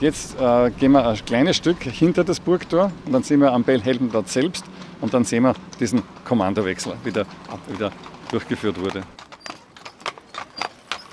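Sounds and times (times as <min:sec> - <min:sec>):
speech: 0:00.0 - 0:09.2
faint street ambience: 0:00.0 - 0:11.1
horse-drawn carriage hooves clip-clopping on hard pavement: 0:00.0 - 0:11.1.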